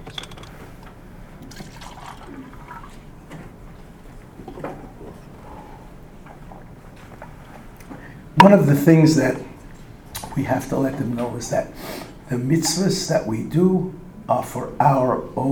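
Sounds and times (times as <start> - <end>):
water being poured or sipped, sloshing and trickling: 1.5 - 3.1
speech: 8.4 - 9.5, 10.4 - 15.4.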